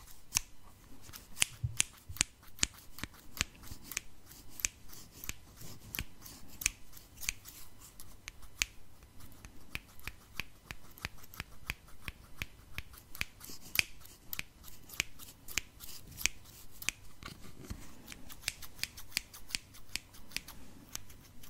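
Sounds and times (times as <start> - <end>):
children's scissors snipping: 0.0 - 21.4.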